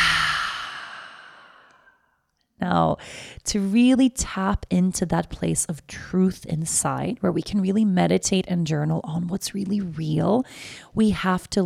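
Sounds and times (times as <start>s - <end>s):
person exhaling deeply through the open mouth during a guided breathing exercise: 0.0s - 1.9s
speech: 2.6s - 11.6s.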